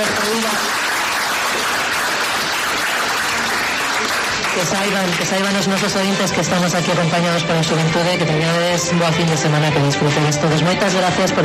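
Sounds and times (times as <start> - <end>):
audience applause for a group of students: 0.0 - 7.0
speech: 4.6 - 11.4.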